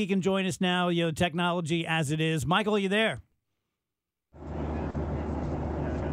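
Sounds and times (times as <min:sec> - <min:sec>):
speech: 0:00.0 - 0:03.3
airplane cabin roar over a phone line aboard an airplane in flight: 0:04.4 - 0:06.1.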